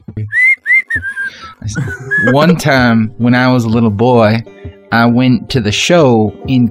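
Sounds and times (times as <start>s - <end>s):
person whistling a short tune: 0.3s - 2.4s
laughter: 1.5s - 2.7s
speech: 1.6s - 6.6s.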